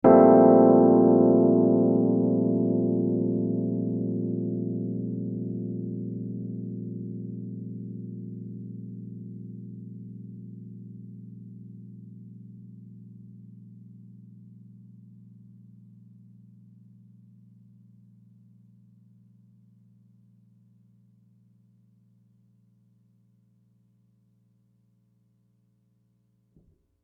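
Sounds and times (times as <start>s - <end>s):
Rhodes electric piano chord Bb major 7 b5: 0.0s - 8.3s.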